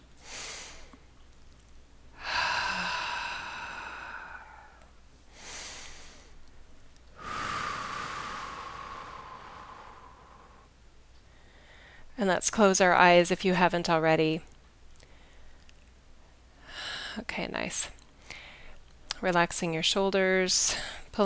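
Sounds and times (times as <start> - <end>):
slow deep breathing in and out: 0.2 - 1.0, 2.2 - 6.5, 7.1 - 12.2, 18.2 - 18.8
speech: 12.2 - 14.5, 19.2 - 21.2.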